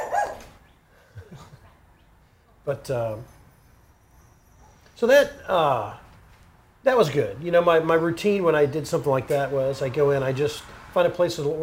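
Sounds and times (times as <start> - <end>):
dogs barking going by: 0.0 - 0.6
speech: 2.6 - 3.4, 5.0 - 6.0, 6.8 - 11.6.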